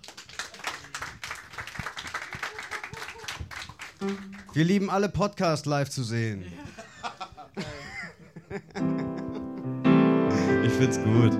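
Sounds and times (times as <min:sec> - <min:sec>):
audience applause: 0:00.0 - 0:04.8
cheers: 0:01.8 - 0:03.7
laughter: 0:02.2 - 0:03.4, 0:06.5 - 0:09.7
speech: 0:04.0 - 0:06.6, 0:10.8 - 0:11.3.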